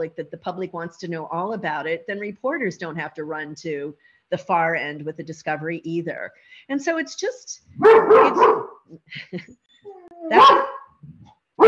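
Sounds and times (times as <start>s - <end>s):
speech: 0.0s - 10.7s
dog barking: 7.8s - 8.8s, 10.3s - 11.0s.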